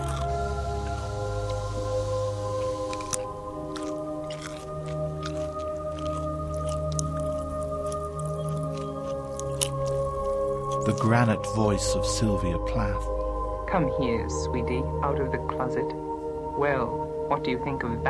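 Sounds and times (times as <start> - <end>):
munching a gherkin: 0.0 - 11.5
steady low humming drone: 0.0 - 18.0
speech: 10.9 - 16.0, 16.6 - 18.0.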